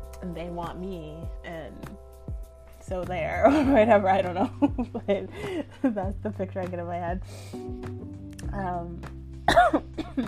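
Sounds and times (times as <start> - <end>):
speech: 0.2 - 2.1, 2.9 - 10.2
person with a dry throat coughing: 9.5 - 10.2.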